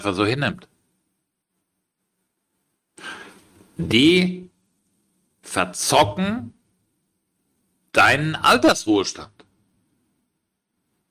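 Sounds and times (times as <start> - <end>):
speech: 0.0 - 0.7, 3.8 - 4.5, 5.5 - 6.6, 7.9 - 9.4
heavy forceful exhale in a breathing exercise: 3.0 - 3.5.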